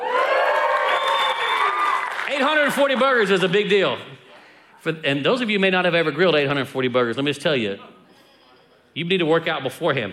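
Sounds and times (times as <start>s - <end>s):
audience cheering with whoops and shouts: 0.0s - 4.0s
speech: 2.3s - 4.2s, 4.8s - 7.9s, 9.0s - 10.1s.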